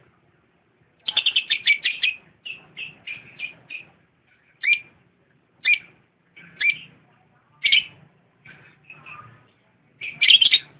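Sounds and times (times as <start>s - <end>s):
lovebird singing shrill chirps: 1.0s - 5.0s, 5.6s - 7.0s, 7.6s - 8.0s, 10.0s - 10.7s.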